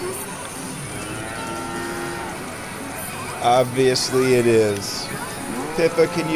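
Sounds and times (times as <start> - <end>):
steady dense din in a pachinko parlor: 0.0 - 6.3
cows mooing in long low calls: 0.8 - 3.6, 5.4 - 6.3
speech: 3.4 - 6.3.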